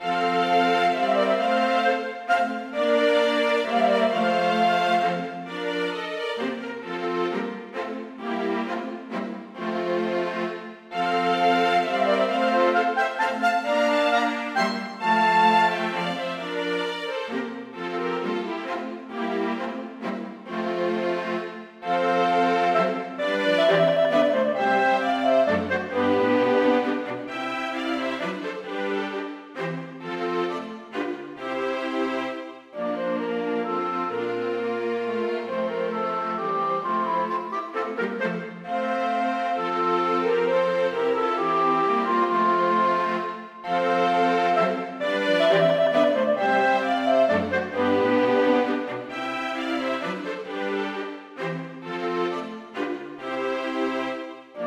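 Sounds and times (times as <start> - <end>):
clarinet and string quartet playing a minuet without piano: 0.0 - 54.6.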